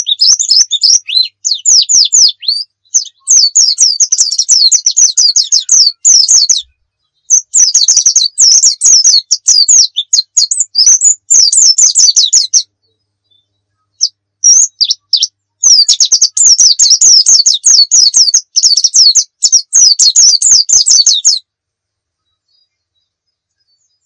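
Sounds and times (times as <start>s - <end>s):
Muria-type white-eye twittering training song: 0.0s - 21.5s.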